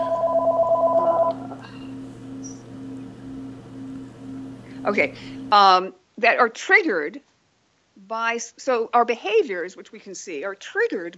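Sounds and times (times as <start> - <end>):
phone ringing in the background with a warbling trill: 0.0 - 1.6
speech: 4.8 - 7.3, 8.0 - 11.1.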